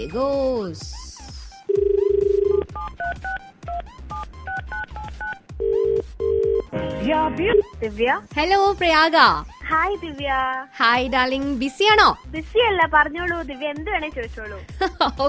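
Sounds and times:
speech: 0:00.0 - 0:01.0, 0:06.0 - 0:15.2
telephone dial tone: 0:01.7 - 0:06.7.

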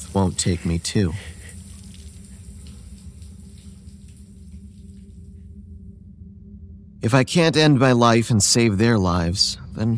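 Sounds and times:
water running from a tap while a razor is rinsed: 0:00.0 - 0:05.3
speech: 0:00.1 - 0:01.4, 0:07.0 - 0:09.9.

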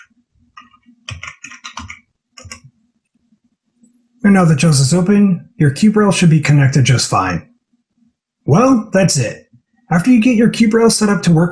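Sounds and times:
computer keyboard typing: 0:00.0 - 0:02.7
speech: 0:04.2 - 0:07.5, 0:08.5 - 0:11.5.

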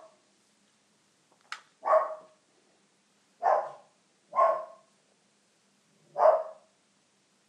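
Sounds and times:
dog barking excitedly: 0:00.0 - 0:00.2, 0:01.8 - 0:02.4, 0:03.4 - 0:04.9, 0:06.1 - 0:06.7.

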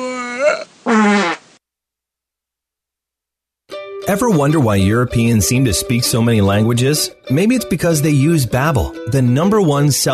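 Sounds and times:
loud buzzy fart: 0:00.2 - 0:01.6
speech: 0:04.1 - 0:10.1.

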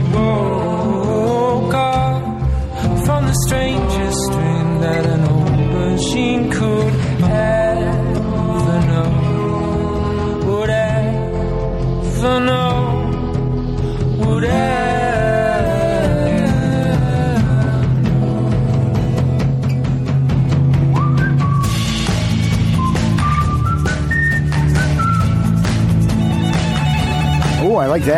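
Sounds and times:
lively instrumental music with full accompaniment: 0:00.0 - 0:28.1
whistled melody: 0:20.7 - 0:28.0
violin: 0:26.0 - 0:28.1.

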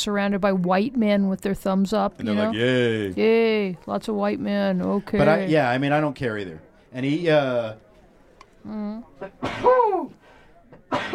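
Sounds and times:
speech: 0:00.0 - 0:07.8, 0:08.6 - 0:10.2, 0:10.9 - 0:11.1
sneeze: 0:09.2 - 0:10.1, 0:10.9 - 0:11.1.

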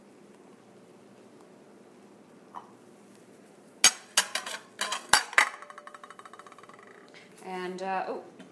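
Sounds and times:
utensil clinking against a bowl as food is scooped in: 0:03.8 - 0:06.9
speech: 0:07.5 - 0:08.4.

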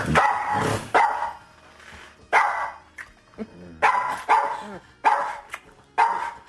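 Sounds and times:
dog barking in loud sharp bursts at people kissing: 0:00.2 - 0:01.5, 0:02.3 - 0:02.8, 0:03.8 - 0:06.4.

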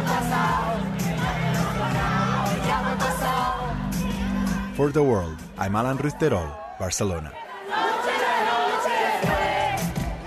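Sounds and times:
large crowd of fans singing along at a live concert: 0:00.0 - 0:04.8, 0:07.4 - 0:10.2
speech: 0:04.8 - 0:07.4.

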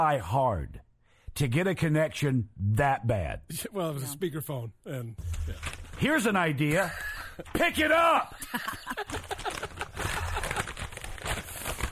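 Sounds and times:
speech: 0:00.0 - 0:00.8, 0:01.4 - 0:09.4
piece of paper being crumpled: 0:05.2 - 0:06.2, 0:08.7 - 0:11.8
laughter: 0:06.7 - 0:11.5.

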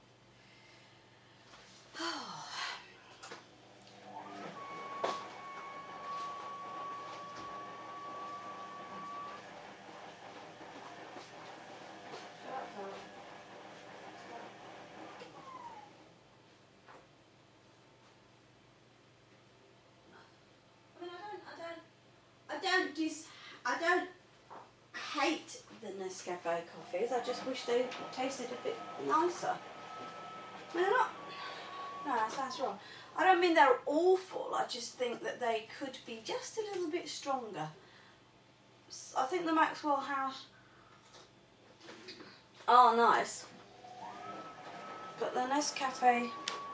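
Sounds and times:
washing machine making odd noises with mechanical rumble and whining tone: 0:04.0 - 0:16.0, 0:26.6 - 0:33.3, 0:43.6 - 0:46.7
speech: 0:22.6 - 0:24.1, 0:25.2 - 0:29.7, 0:30.7 - 0:31.2, 0:32.1 - 0:37.8, 0:39.1 - 0:40.5, 0:42.7 - 0:43.5, 0:45.2 - 0:46.4.

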